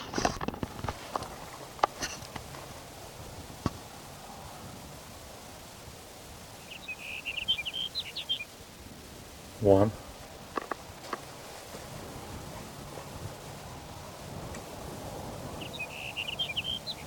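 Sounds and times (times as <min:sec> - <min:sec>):
hiss: 0:00.0 - 0:17.0
sage sparrow singing: 0:06.6 - 0:08.6, 0:15.6 - 0:17.0
speech: 0:09.6 - 0:10.0.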